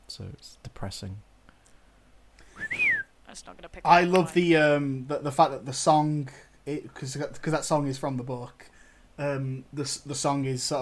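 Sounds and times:
speech: 0.2 - 1.3, 3.3 - 10.8
whistled call sign imitation: 2.5 - 3.2.

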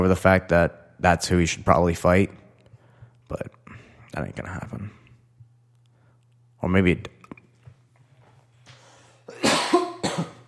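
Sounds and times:
speech: 0.0 - 2.4, 3.3 - 5.0, 6.6 - 7.2
low steady hum: 0.0 - 10.4
person coughing as throat catches: 9.3 - 10.4.

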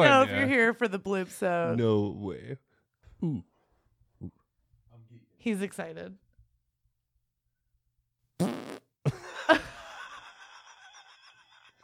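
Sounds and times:
speech: 0.0 - 3.5, 4.2 - 4.4, 5.4 - 6.2
loud buzzy fart: 8.4 - 8.9
laughter: 9.1 - 11.8.

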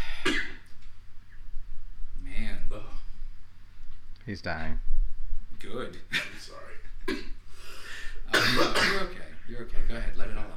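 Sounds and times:
man coughing into the microphone: 0.0 - 0.6, 7.0 - 7.4, 8.3 - 9.2
speech: 4.3 - 4.9, 5.6 - 7.2, 8.5 - 10.5.

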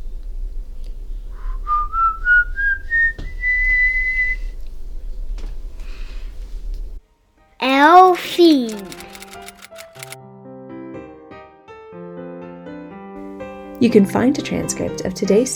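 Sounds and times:
low steady rumbling background: 0.0 - 7.0
eerie whistling imitating the Silbón: 1.2 - 4.6
speech: 7.8 - 9.0, 13.8 - 15.5.

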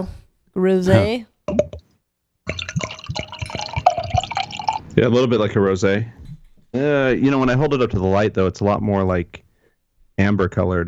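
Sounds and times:
speech: 0.0 - 1.3, 5.0 - 9.4, 10.2 - 10.8
sour beer pouring into a glass: 2.5 - 5.2
glass clink: 2.7 - 5.1.

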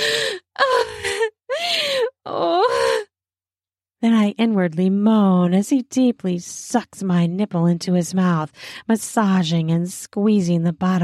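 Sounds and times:
woman gasping: 0.0 - 3.1
speech: 4.0 - 11.0.

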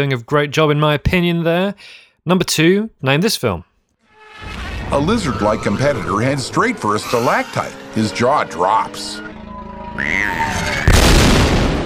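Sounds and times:
speech: 0.0 - 3.7, 4.9 - 9.3, 10.0 - 10.9
fiery film explosion in a cave: 4.2 - 7.8, 9.6 - 11.8
high tonal whine: 4.2 - 10.9.

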